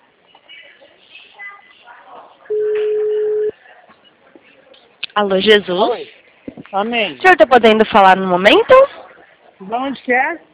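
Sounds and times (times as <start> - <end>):
telephone ringing tone as a call is placed: 2.5 - 3.5
speech: 5.2 - 9.0, 9.6 - 10.5.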